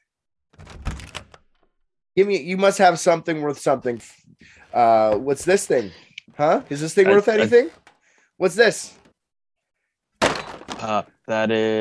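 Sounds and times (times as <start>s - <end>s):
door being opened: 0.5s - 1.6s
speech: 2.2s - 9.0s, 10.8s - 11.7s.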